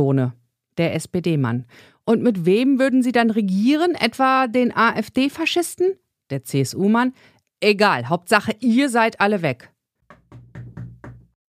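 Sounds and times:
speech: 0:00.0 - 0:09.7
firm knocking on a door: 0:10.1 - 0:11.4.

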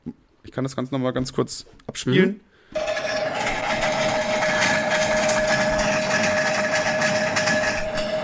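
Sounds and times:
speech: 0:00.1 - 0:02.9
washing machine spinning with rocks inside: 0:02.8 - 0:08.2.

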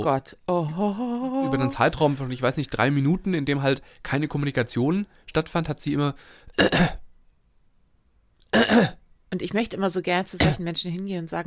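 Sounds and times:
speech: 0:00.0 - 0:07.0, 0:08.5 - 0:11.4
person imitating a woman's throat clearing: 0:06.6 - 0:07.0, 0:08.5 - 0:09.0, 0:10.4 - 0:10.6.

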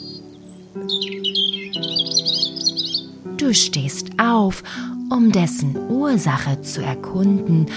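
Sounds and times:
bird twittering: 0:00.0 - 0:04.2
steady sustained musical drone: 0:00.0 - 0:06.9
speech: 0:00.7 - 0:07.7.

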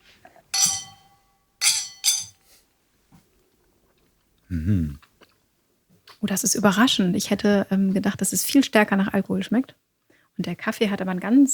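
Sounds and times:
glasses of foam-topped cold brew coffee drink clinking in a toast: 0:00.5 - 0:02.4
speech: 0:04.5 - 0:05.1, 0:06.2 - 0:11.5.

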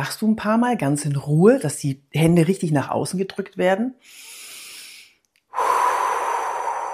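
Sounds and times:
speech: 0:00.0 - 0:04.4
deep belly breathing exhaling through the mouth: 0:04.0 - 0:06.9.

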